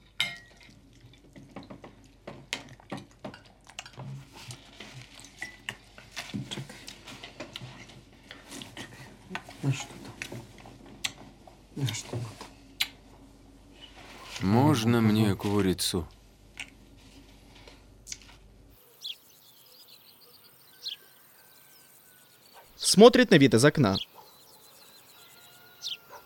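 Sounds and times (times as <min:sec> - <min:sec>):
spoon clinking against a bowl of soup: 0:00.2 - 0:00.7
speech: 0:09.6 - 0:10.0, 0:11.8 - 0:12.4, 0:14.4 - 0:16.2, 0:23.0 - 0:24.1.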